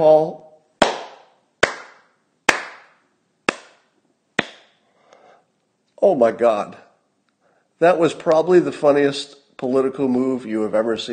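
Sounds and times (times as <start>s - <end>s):
speech: 0.0s - 0.4s, 6.0s - 6.8s, 7.8s - 11.1s
single person slow clapping: 0.8s - 4.7s.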